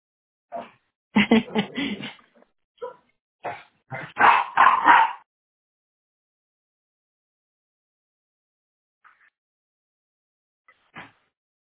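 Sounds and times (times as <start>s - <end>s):
laughter: 1.2s - 2.3s
dogs barking and yipping: 4.1s - 5.3s.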